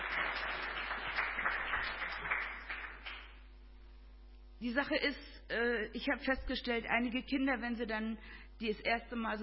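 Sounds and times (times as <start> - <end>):
audience applauding: 0.0 - 3.4
speech: 4.6 - 9.4.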